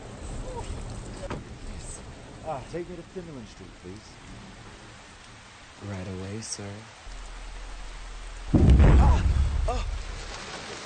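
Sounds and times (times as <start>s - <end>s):
heavy rain: 0.0s - 10.8s
speech: 2.5s - 4.3s, 5.8s - 7.0s, 9.7s - 9.9s.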